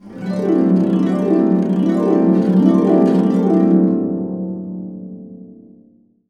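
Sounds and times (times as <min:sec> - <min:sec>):
harp cascading up and down in C: 0:00.0 - 0:04.0.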